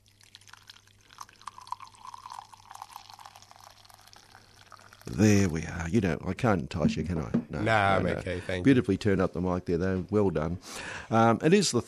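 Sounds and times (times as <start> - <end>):
tea pouring into a cup: 0.0 - 6.0
speech: 5.1 - 11.8.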